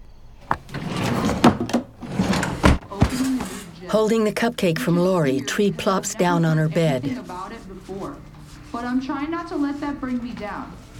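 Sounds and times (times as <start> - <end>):
wooden dresser drawer sliding and thumping: 0.5 - 3.6
low murmuring background: 2.8 - 10.9
speech: 3.9 - 10.8.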